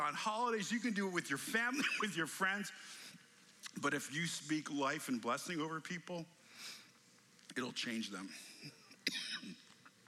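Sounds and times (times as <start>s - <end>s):
speech: 0.0s - 3.0s, 3.7s - 6.8s, 7.5s - 9.6s
person coughing: 8.6s - 9.6s
person clearing throat: 8.6s - 9.7s.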